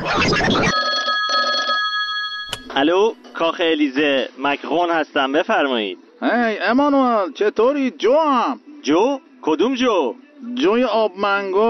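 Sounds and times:
electronic telephone ring sound effect: 0:00.7 - 0:02.8
speech: 0:02.8 - 0:11.6.

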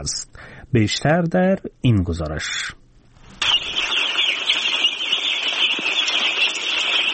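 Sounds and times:
speech: 0:00.0 - 0:02.8
day-old chicken chicks peeping on a poultry farm in Tutumdara village Afghanistan: 0:03.4 - 0:07.1.

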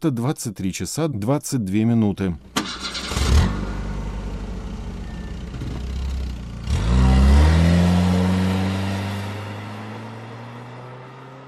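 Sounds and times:
speech: 0:00.0 - 0:03.7
car engine cranking, idling and revving: 0:02.4 - 0:11.4.

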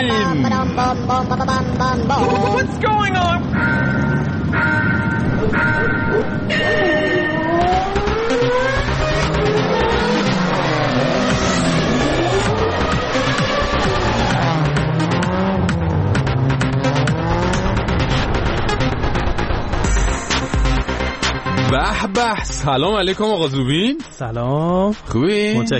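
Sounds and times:
racing car engines revving as cars accelerate and pass: 0:00.0 - 0:21.7
speech: 0:00.9 - 0:03.8, 0:21.7 - 0:25.7.

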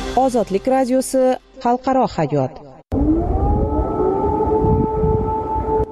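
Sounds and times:
speech: 0:00.2 - 0:02.7
air raid siren wailing over a city: 0:02.9 - 0:05.9.

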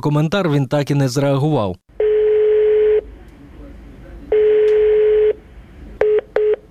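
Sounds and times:
speech: 0:00.0 - 0:01.8
long steady telephone call tones of an outgoing call: 0:02.0 - 0:03.0, 0:04.3 - 0:05.4, 0:06.0 - 0:06.6.

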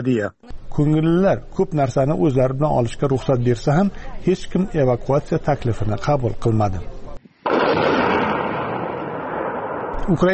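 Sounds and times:
speech: 0:00.0 - 0:07.0, 0:10.1 - 0:10.3
explosion in war footage from fighting around Bakhmut: 0:07.4 - 0:10.3.

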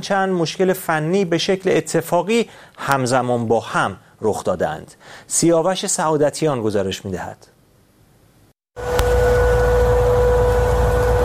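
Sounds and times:
speech: 0:00.0 - 0:07.5
loud air-raid warning siren droning: 0:08.8 - 0:11.2.

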